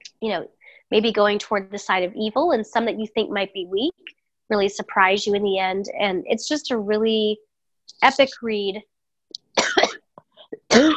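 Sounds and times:
speech: 0:00.2 - 0:08.9, 0:10.8 - 0:10.9
harsh raspy coughs: 0:09.6 - 0:10.1, 0:10.7 - 0:10.9.

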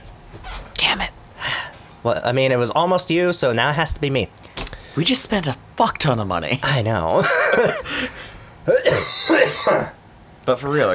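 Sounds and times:
speech: 0:00.3 - 0:01.1, 0:02.0 - 0:10.9
laughter: 0:07.2 - 0:08.3
person coughing: 0:08.6 - 0:10.0
throat clearing: 0:08.7 - 0:10.0.

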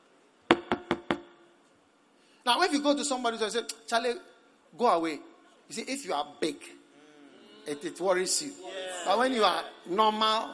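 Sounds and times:
knocking on a door: 0:00.5 - 0:01.3
speech: 0:02.4 - 0:06.8, 0:07.6 - 0:10.5.

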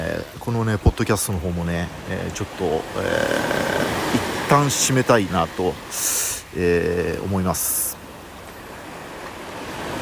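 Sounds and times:
ocean waves breaking on shore: 0:00.0 - 0:09.9
speech: 0:00.5 - 0:07.9.

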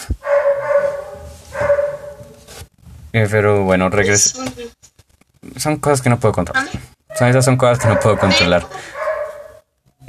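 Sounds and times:
drawn-out tonal dog barks: 0:00.2 - 0:02.4, 0:07.6 - 0:09.7
speech: 0:03.1 - 0:04.8, 0:05.6 - 0:09.0.

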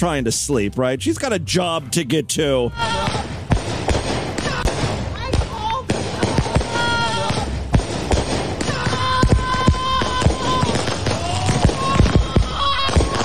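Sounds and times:
speech: 0:00.0 - 0:03.3
upset woman shouting: 0:02.7 - 0:03.3, 0:04.4 - 0:07.5, 0:08.6 - 0:13.2
fireworks banging and crackling in a street: 0:02.8 - 0:13.2.

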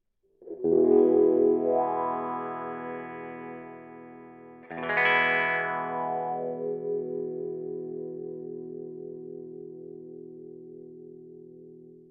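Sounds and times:
slightly distorted electric guitar chords with wah-wah pedal: 0:00.4 - 0:12.1.

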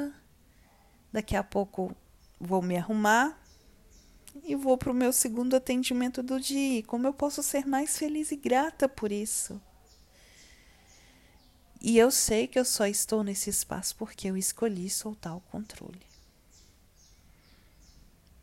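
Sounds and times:
speech: 0:01.2 - 0:03.4, 0:04.4 - 0:09.7, 0:11.8 - 0:16.1
small bird singing: 0:02.2 - 0:04.6, 0:09.1 - 0:11.8, 0:14.8 - 0:18.1.

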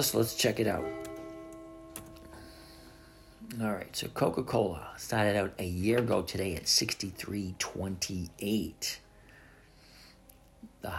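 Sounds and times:
speech: 0:00.0 - 0:01.1, 0:03.5 - 0:09.0
clock chiming the hour: 0:00.1 - 0:03.2.

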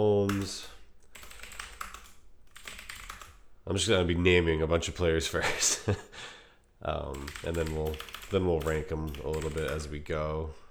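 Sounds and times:
speech: 0:00.0 - 0:00.8, 0:03.7 - 0:10.6
typing on a computer keyboard: 0:00.2 - 0:03.4, 0:07.1 - 0:10.0.

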